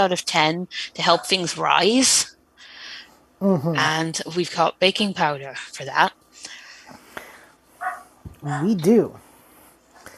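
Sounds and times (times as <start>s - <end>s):
speech: 0.0s - 2.4s, 3.4s - 6.6s, 8.4s - 9.2s
dogs barking: 7.8s - 8.2s.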